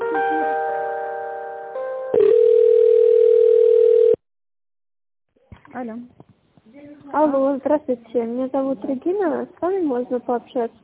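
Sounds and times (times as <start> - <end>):
telephone line tones during office call transfer: 2.1 - 4.2
speech: 5.8 - 6.3, 7.2 - 10.8.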